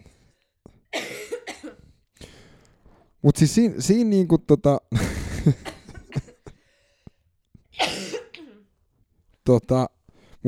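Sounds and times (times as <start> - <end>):
person coughing harshly: 0.9 - 2.4, 5.3 - 6.7, 7.8 - 8.7
speech: 3.2 - 5.8, 9.5 - 10.4.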